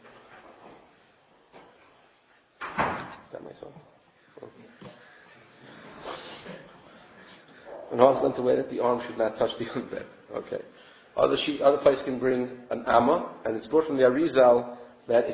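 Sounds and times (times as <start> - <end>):
room noise: 0.0 - 15.3
door pushed shut with a thud: 2.6 - 3.2
speech: 3.3 - 5.1, 7.9 - 15.3.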